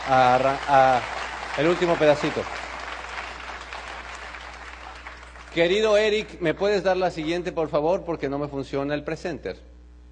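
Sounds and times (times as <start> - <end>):
speech: 0.0 - 2.6, 5.5 - 9.7
audience applause: 0.0 - 6.0.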